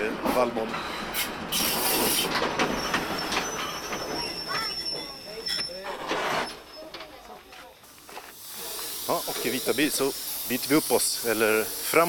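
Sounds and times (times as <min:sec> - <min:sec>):
coal-fired steam locomotive train rolling past green wheat fields: 0:00.0 - 0:06.0, 0:08.0 - 0:12.0
steam locomotive wheels rumbling on rails: 0:00.0 - 0:07.4
speech: 0:00.4 - 0:03.1, 0:09.1 - 0:12.0
high metallic wheel squeals of a steam locomotive: 0:01.5 - 0:06.9.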